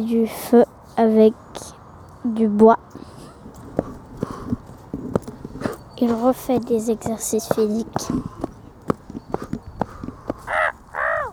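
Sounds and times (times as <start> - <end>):
speech: 0.0 - 3.2, 6.0 - 8.4
scattered clattering steps and knocks: 2.9 - 10.6
man mimicking a bird with hoarse crow-like caws: 10.5 - 11.3.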